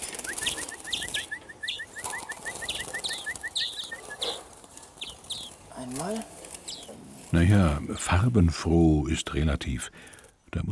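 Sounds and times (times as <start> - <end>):
rapid steady trill of short greenfinch chirps: 0.0 - 4.3
greenfinches twittering at a feeder: 0.0 - 8.4
soft outdoor hiss: 0.0 - 10.7
speech: 7.3 - 10.7.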